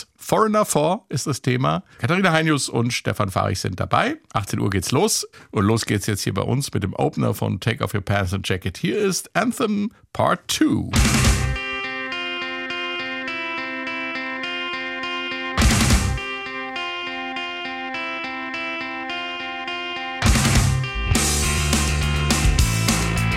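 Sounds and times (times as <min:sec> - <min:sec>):
speech: 0:00.0 - 0:11.4
growling heavily distorted bass guitar in a rock track: 0:10.9 - 0:23.3
crashing drum bursts: 0:11.0 - 0:11.6, 0:15.6 - 0:16.2, 0:20.3 - 0:23.0.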